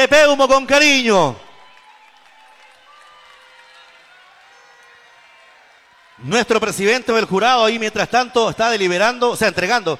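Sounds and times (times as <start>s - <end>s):
speech: 0.0s - 1.4s, 6.2s - 9.9s
audience applause: 1.5s - 7.8s.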